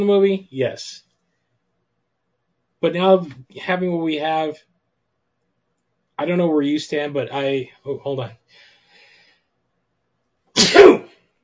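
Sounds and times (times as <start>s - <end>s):
speech: 0.0s - 1.1s, 2.8s - 4.7s, 6.2s - 8.6s
sneeze: 10.6s - 11.2s.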